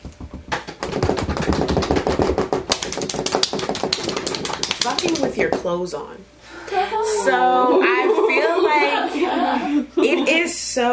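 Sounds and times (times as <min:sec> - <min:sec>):
drum roll: 0:00.0 - 0:05.7
speech: 0:05.0 - 0:10.9
laughter: 0:07.7 - 0:10.6.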